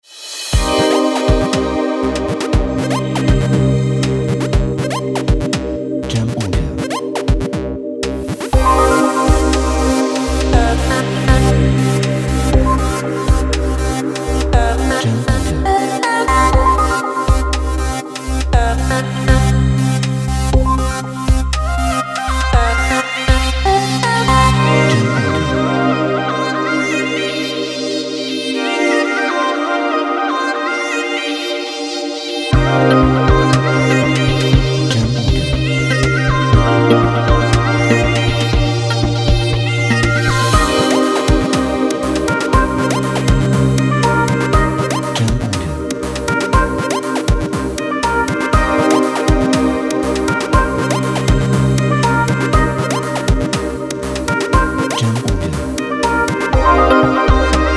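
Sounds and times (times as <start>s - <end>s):
chill urban music broadcast: 0.5s - 57.7s.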